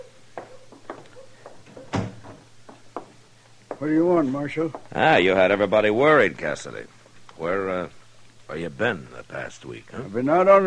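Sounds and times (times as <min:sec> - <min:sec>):
footstep-like taps: 0:00.3 - 0:03.9, 0:04.6 - 0:04.9
small creaks and knocks: 0:00.4 - 0:03.8
door shutting with a solid thud: 0:01.7 - 0:02.5
speech: 0:03.8 - 0:10.6.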